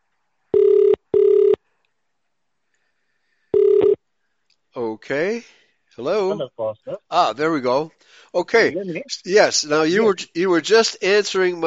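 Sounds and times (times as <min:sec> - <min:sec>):
telephone ringing tone on a call: 0:00.6 - 0:01.6, 0:03.6 - 0:04.0
speech: 0:04.8 - 0:11.6.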